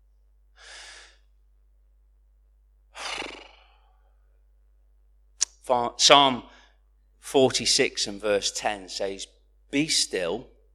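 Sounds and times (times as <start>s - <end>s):
slow deep breathing: 0.6s - 1.3s, 2.9s - 4.3s
speech: 5.7s - 6.5s, 7.2s - 10.5s.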